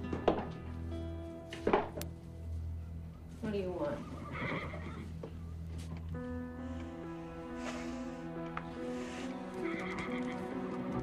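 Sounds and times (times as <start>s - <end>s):
faint hoof shuffles and clip-clops in a stable: 0.0s - 11.0s
speech: 3.5s - 4.7s
horse whinnying in a stable: 4.0s - 5.2s, 9.5s - 10.7s.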